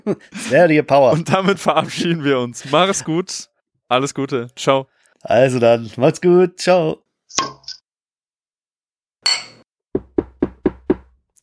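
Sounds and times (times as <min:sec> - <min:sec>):
speech: 0:00.1 - 0:07.8
bright metallic clink: 0:09.3 - 0:09.6
knocking on a door: 0:09.9 - 0:11.2.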